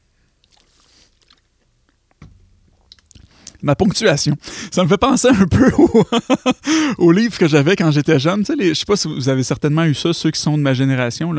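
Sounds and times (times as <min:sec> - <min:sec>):
person gulping water: 0:00.0 - 0:03.6
soft wet mouth clicks while sipping water: 0:00.3 - 0:03.6
speech: 0:03.6 - 0:11.3
laughter: 0:05.3 - 0:06.7.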